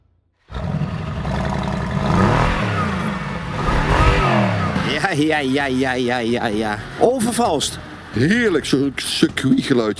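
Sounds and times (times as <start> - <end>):
Mercedes-Benz convertible V8 engine starting, idling and revving: 0.4 - 6.9
speech: 5.1 - 9.9.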